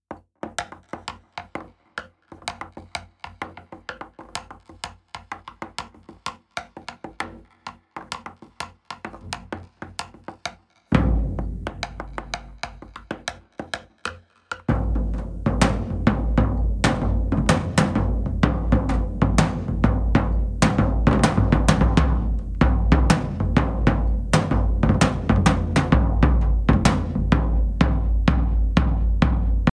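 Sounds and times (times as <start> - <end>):
drum solo with sticks: 10.9 - 13.6, 14.7 - 29.7.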